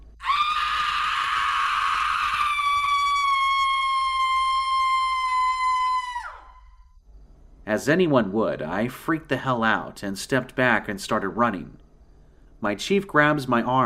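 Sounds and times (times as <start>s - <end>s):
long piercing creature scream: 0.2s - 6.8s
speech: 7.7s - 11.8s, 12.6s - 13.8s.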